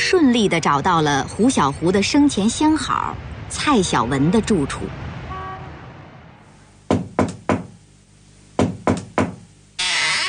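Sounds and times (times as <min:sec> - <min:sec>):
speech: 0:00.1 - 0:05.1
firm knocking on a door: 0:06.9 - 0:07.8, 0:08.6 - 0:09.4.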